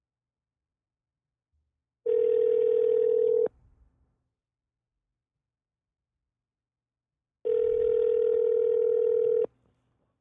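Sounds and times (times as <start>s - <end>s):
outgoing phone call ringing tone: 2.1s - 3.5s, 7.5s - 9.5s.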